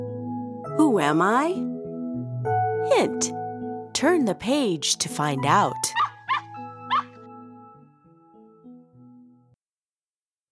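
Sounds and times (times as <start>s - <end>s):
speech: 0.8s - 1.7s, 2.8s - 3.4s, 4.0s - 6.0s
puppy yapping: 5.9s - 7.2s.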